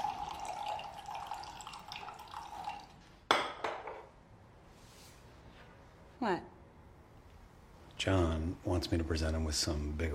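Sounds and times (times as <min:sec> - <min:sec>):
coffee being poured: 0:00.0 - 0:03.1
speech: 0:06.2 - 0:06.5, 0:08.0 - 0:10.1.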